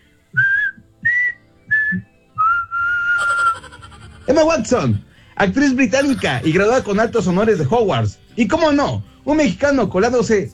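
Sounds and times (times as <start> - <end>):
person whistling clear steady notes: 0.3 - 3.5
laughter: 3.2 - 5.0, 5.6 - 8.1
speech: 4.3 - 10.5.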